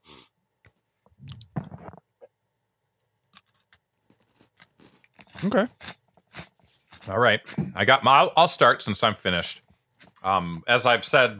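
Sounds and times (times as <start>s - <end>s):
crunchy chewing of a golden Oreo cookie: 3.2s - 7.2s
speech: 5.4s - 5.8s, 7.1s - 9.6s, 10.2s - 11.3s.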